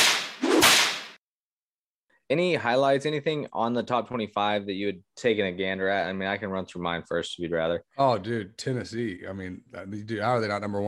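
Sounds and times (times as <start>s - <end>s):
whip crack sound effect: 0.0s - 1.2s
speech: 2.3s - 10.8s.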